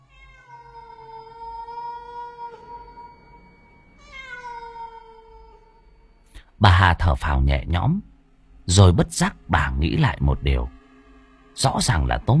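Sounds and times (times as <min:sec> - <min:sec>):
house cat meowing: 0:00.0 - 0:03.4, 0:04.0 - 0:06.0
speech: 0:06.6 - 0:08.1, 0:08.7 - 0:10.8, 0:11.6 - 0:12.3.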